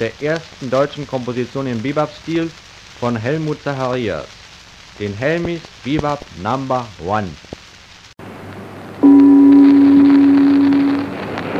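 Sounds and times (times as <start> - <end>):
speech: 0.0 - 4.4, 5.0 - 7.5
boat's deep horn blast: 9.0 - 11.2.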